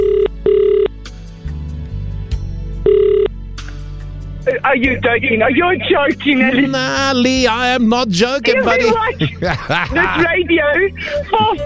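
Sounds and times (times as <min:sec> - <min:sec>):
telephone ringback tone while calling a contest winner: 0:00.0 - 0:00.9, 0:02.8 - 0:03.3
speech: 0:04.7 - 0:11.6
laughter: 0:05.4 - 0:11.6.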